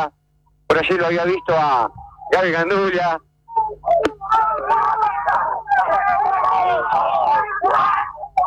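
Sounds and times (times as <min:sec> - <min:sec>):
speech: 0:00.0 - 0:05.0
excited wailing cries: 0:03.6 - 0:08.4
crowd shouting and cheering after race win: 0:04.0 - 0:08.4.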